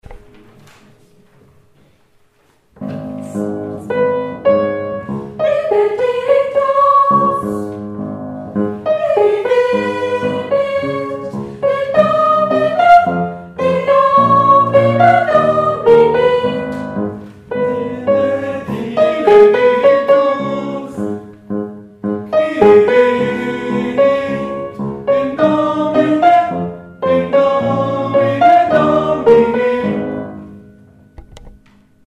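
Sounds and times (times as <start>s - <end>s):
mass choir singing: 3.3s - 7.8s, 8.6s - 21.3s, 22.3s - 30.6s.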